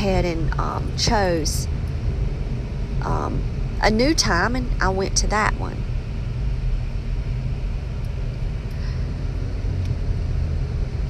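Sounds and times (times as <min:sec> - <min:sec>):
speech: 0:00.0 - 0:01.8, 0:03.0 - 0:05.9
car engine rumble in traffic: 0:00.0 - 0:11.0
road noise: 0:00.0 - 0:11.0.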